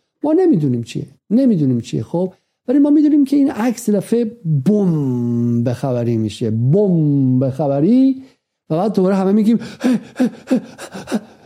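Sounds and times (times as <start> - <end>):
speech: 0.2 - 11.4
person imitating a running dog panting: 9.6 - 11.4.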